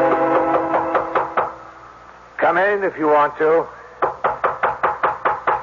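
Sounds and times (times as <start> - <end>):
sharp knocking on a door: 0.1 - 1.6, 4.0 - 5.6
speech: 2.8 - 3.8.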